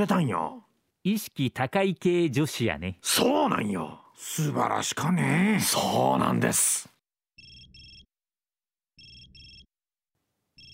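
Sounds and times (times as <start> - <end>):
speech: 0.0 - 6.9
phone ringing with double-pulsed electronic trills: 7.4 - 8.1, 9.0 - 9.8, 10.5 - 10.7.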